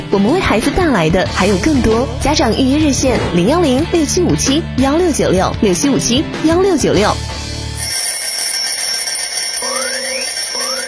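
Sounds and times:
speech: 0.1 - 7.4
alarm clock ringing: 7.8 - 10.8.

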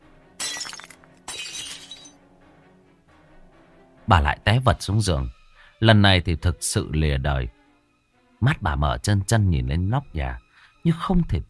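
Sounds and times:
glass of an oil lamp shattering as it is smashed against a head: 0.4 - 2.2
speech: 4.1 - 7.6, 8.4 - 11.4.

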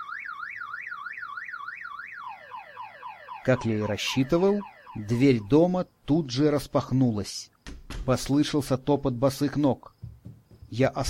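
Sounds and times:
car alarm wailing at night: 0.0 - 5.8
speech: 3.4 - 9.9, 10.7 - 11.0.

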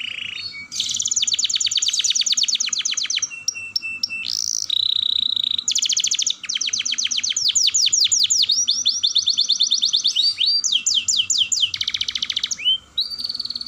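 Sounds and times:
Atlantic canary singing with long rolling trills: 0.0 - 13.6.

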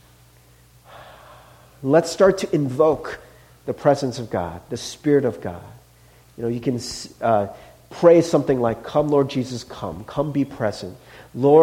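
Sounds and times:
quiet hum: 0.0 - 11.6
deep breathing in through nose and out through mouth: 0.5 - 1.8, 11.0 - 11.4
speech: 1.8 - 5.8, 6.4 - 11.6.

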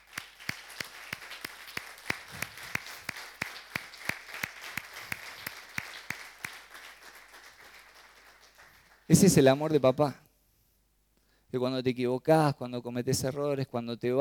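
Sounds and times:
church congregation clapping in rhythm: 0.0 - 10.1
speech: 9.1 - 10.2, 11.5 - 14.1.

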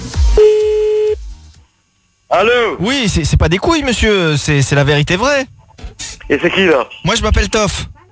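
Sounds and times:
telephone ringing tone while calling back: 0.4 - 1.2
speech: 2.3 - 8.0.

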